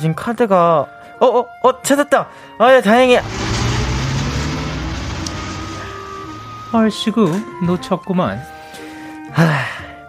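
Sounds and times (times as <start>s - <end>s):
speech: 0.0s - 3.4s, 6.7s - 8.5s, 9.3s - 9.8s
bus engine rumbling as the bus pulls away from a stop: 2.8s - 8.0s.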